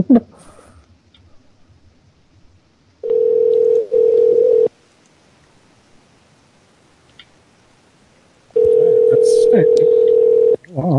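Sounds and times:
speech: 0:00.0 - 0:00.3
telephone tone while calling someone: 0:03.0 - 0:04.7, 0:08.6 - 0:10.6.

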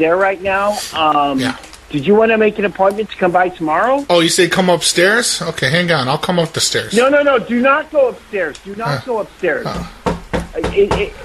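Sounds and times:
speech: 0:00.0 - 0:10.0, 0:10.7 - 0:11.2
faint voice-like sound: 0:08.8 - 0:09.0
firm knocking on a door: 0:09.7 - 0:11.2.

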